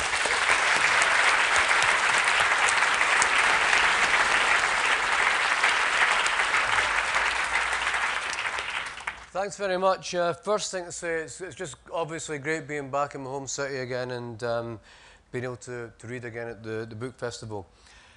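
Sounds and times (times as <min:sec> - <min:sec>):
audience applause: 0:00.0 - 0:09.3
speech: 0:09.4 - 0:18.0.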